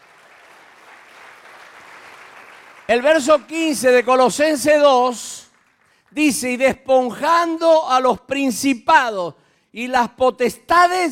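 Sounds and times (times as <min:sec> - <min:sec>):
church congregation clapping: 0:00.0 - 0:07.8
speech: 0:02.9 - 0:05.5, 0:06.1 - 0:11.1.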